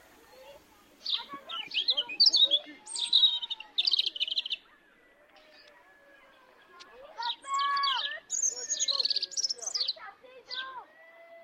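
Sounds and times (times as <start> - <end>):
nightingale singing whistles, trills and chirping bursts: 1.0 - 4.7, 6.8 - 10.6.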